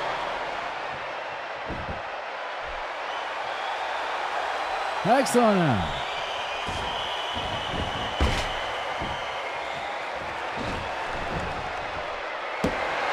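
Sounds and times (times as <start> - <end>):
wrestler's power slam onto the ring in a televised wrestling match: 0.0 - 3.0, 5.8 - 13.1
crowd noise at a televised wrestling match: 0.0 - 13.1
speech: 5.0 - 6.0.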